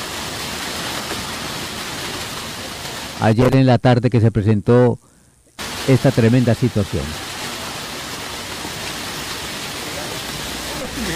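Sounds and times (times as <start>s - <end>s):
strong windstorm with falling hail: 0.0s - 3.3s, 5.6s - 11.1s
speech: 3.2s - 5.1s, 5.8s - 7.2s.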